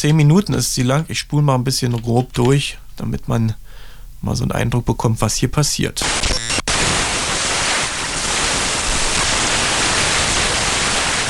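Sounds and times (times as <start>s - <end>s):
speech: 0.0s - 3.6s, 4.2s - 6.5s
digital static hiss: 0.0s - 11.2s
stuttering glitch: 6.0s - 9.8s.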